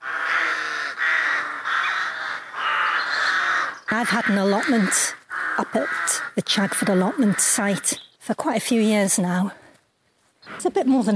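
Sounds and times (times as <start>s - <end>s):
crows cawing: 0.0s - 8.0s
speech: 3.9s - 9.6s, 10.6s - 11.1s.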